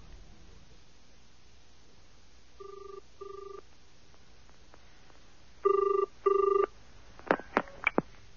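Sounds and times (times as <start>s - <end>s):
telephone ringing tone heard down the line: 2.6s - 3.6s, 5.6s - 6.7s.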